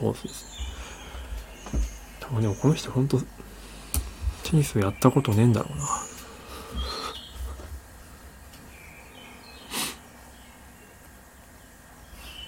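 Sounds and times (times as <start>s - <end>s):
speech: 0.0s - 0.7s, 1.7s - 3.4s, 4.5s - 6.0s
birdsong on a morning farm: 0.0s - 12.4s.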